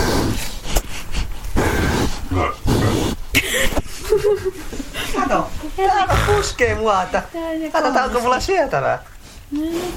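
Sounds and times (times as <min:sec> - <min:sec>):
pigs grunting and snorting: 0:00.0 - 0:03.3, 0:06.0 - 0:06.9
laughter: 0:03.4 - 0:05.5
speech: 0:05.3 - 0:09.9.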